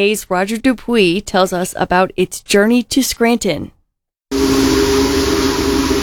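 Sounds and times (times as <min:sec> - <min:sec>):
speech: 0:00.0 - 0:03.8
steam whistle of the Union Pacific Big Boy 4014 locomotive: 0:04.3 - 0:06.0.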